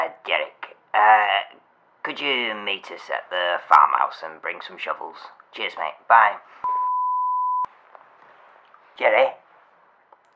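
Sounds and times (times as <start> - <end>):
speech: 0.1 - 6.8, 9.0 - 9.4
phone beeping: 6.6 - 7.7.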